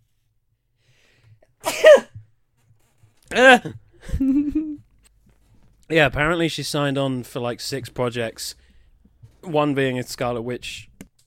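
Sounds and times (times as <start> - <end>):
person sneezing: 1.6 - 2.2
speech: 3.4 - 4.8, 5.9 - 8.6, 9.4 - 11.2.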